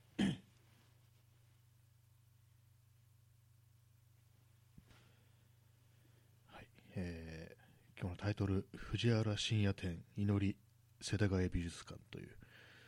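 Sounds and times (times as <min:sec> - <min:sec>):
steady low hum: 0:00.0 - 0:12.8
person clearing throat: 0:00.2 - 0:00.5
speech: 0:08.0 - 0:12.6.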